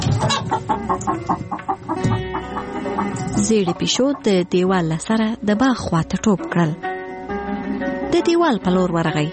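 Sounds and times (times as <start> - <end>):
white hen cackling near a garden wall: 0.0 - 4.4
speech: 0.7 - 1.6, 3.4 - 6.9, 8.2 - 9.3.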